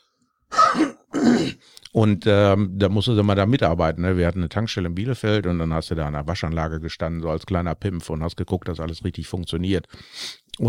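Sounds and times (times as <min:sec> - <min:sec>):
harsh throat clearing: 0:00.5 - 0:01.7
speech: 0:02.0 - 0:10.6.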